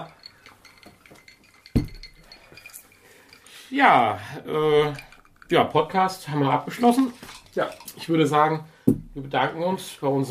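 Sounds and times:
clatter: 0.0 - 3.6, 4.6 - 8.1
faint tinkling: 0.0 - 8.1
filled drinking glasses clinking in a toast: 0.0 - 8.1
speech: 3.7 - 10.2.

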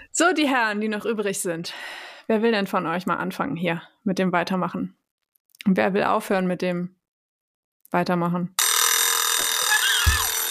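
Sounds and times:
speech: 0.2 - 5.0, 5.6 - 7.0, 7.9 - 8.6
alarm clock bell ringing: 8.6 - 10.4.

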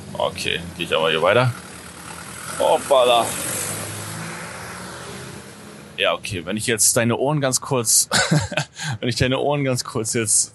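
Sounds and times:
speech: 0.1 - 1.6, 2.6 - 3.4, 6.0 - 10.5
large truck driving past: 1.5 - 6.0
laughter: 8.0 - 9.0.

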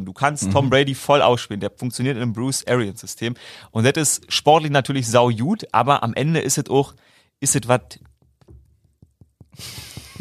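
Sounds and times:
speech: 0.0 - 8.1, 9.6 - 10.1
knocking on wood: 7.9 - 10.1.

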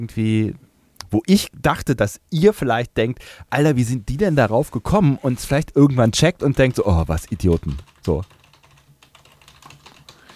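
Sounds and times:
speech: 0.0 - 8.4
typing on a computer keyboard: 6.4 - 10.3.

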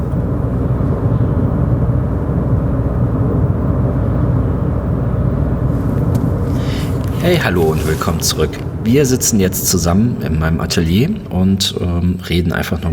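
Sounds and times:
road rumble and engine drone inside a moving car: 0.0 - 12.9
speech: 7.3 - 12.9.

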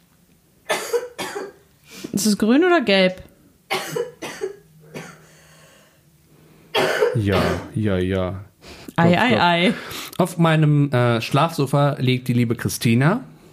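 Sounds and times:
sick girl coughing on a sofa: 0.7 - 1.6, 3.7 - 5.3, 6.7 - 7.7
speech: 2.2 - 3.3, 7.2 - 13.3.

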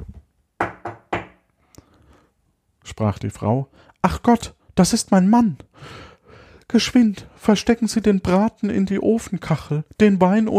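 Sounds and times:
firm knocking on a door: 0.6 - 1.4
speech: 2.9 - 6.1, 6.7 - 10.5.

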